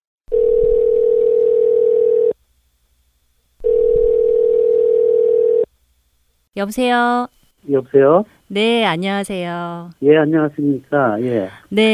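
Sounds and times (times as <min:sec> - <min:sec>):
telephone dial tone while placing a call: 0:00.3 - 0:02.4, 0:03.6 - 0:05.7
speech: 0:06.6 - 0:11.9.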